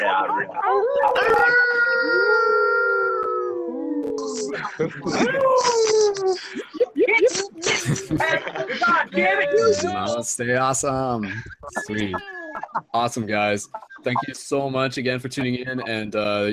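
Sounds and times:
several people howling like wolves over an online call: 0:00.5 - 0:05.6
people yipping and whooping: 0:00.6 - 0:04.6
laughter: 0:04.2 - 0:16.5
speech: 0:04.8 - 0:06.8, 0:08.0 - 0:16.5.

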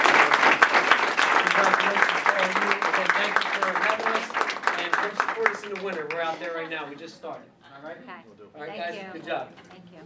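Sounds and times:
audience applause: 0:00.0 - 0:06.8
speech: 0:06.3 - 0:10.0.

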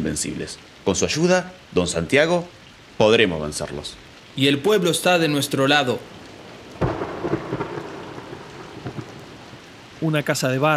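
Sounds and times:
speech: 0:00.0 - 0:06.2, 0:10.0 - 0:10.7
steady rain: 0:00.0 - 0:10.7
low rumble of thunder: 0:03.6 - 0:10.7.

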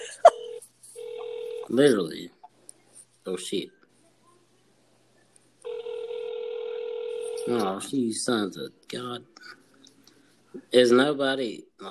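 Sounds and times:
telephone ringback line tone: 0:00.4 - 0:01.7, 0:05.6 - 0:07.5
speech: 0:01.7 - 0:02.4, 0:03.2 - 0:03.8, 0:07.5 - 0:09.6, 0:10.6 - 0:11.9.

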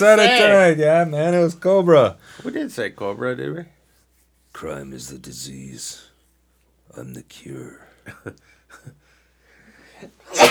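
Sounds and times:
speech: 0:00.0 - 0:03.8, 0:04.6 - 0:06.1, 0:06.9 - 0:09.0
faint breathy sounds: 0:02.2 - 0:02.6, 0:07.8 - 0:10.3
loud sneeze: 0:10.3 - 0:10.4.

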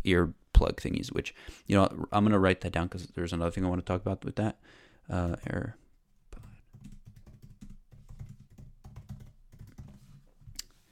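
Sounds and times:
speech: 0:00.0 - 0:05.8
rapid typing on a computer keyboard: 0:06.4 - 0:10.1.

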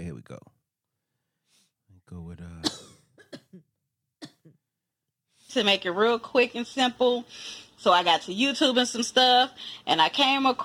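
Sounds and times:
speech: 0:00.0 - 0:00.6, 0:02.1 - 0:02.7, 0:05.5 - 0:10.6
dry coughs: 0:02.6 - 0:04.6.

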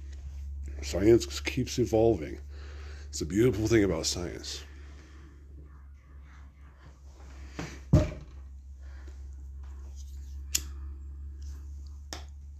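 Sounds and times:
steady low hum: 0:00.0 - 0:12.5
speech: 0:00.8 - 0:02.5, 0:03.1 - 0:04.7
banging on a wall: 0:07.9 - 0:08.4.

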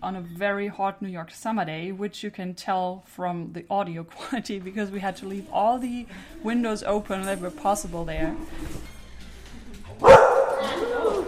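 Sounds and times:
speech: 0:00.0 - 0:08.9
dog barking: 0:10.0 - 0:11.1.

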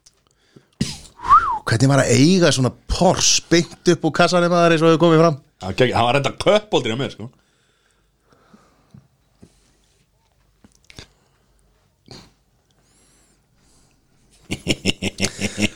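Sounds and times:
speech: 0:01.7 - 0:07.4
person biting and chewing a hot dog with everything on it: 0:10.2 - 0:12.8
laughter: 0:14.5 - 0:15.7.

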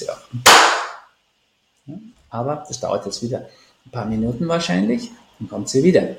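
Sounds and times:
loud sharp hand slap: 0:00.4 - 0:01.1
speech: 0:02.3 - 0:06.1.

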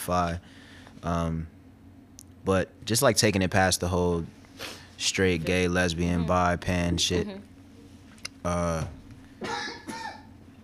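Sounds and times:
speech: 0:00.0 - 0:01.6, 0:02.4 - 0:07.5, 0:08.4 - 0:09.6
person coughing: 0:09.4 - 0:10.3.

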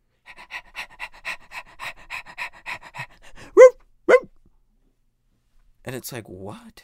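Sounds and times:
person imitating a dog panting: 0:00.3 - 0:04.3
short whining yelps: 0:03.6 - 0:04.3
speech: 0:05.9 - 0:06.8.

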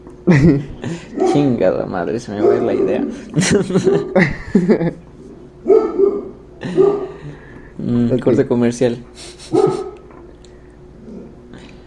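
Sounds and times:
speech: 0:00.2 - 0:05.0, 0:08.0 - 0:09.6
person laughing: 0:00.3 - 0:01.2, 0:03.1 - 0:05.1, 0:09.2 - 0:10.0
dogs barking: 0:01.0 - 0:04.2, 0:05.6 - 0:07.4, 0:09.4 - 0:10.1.

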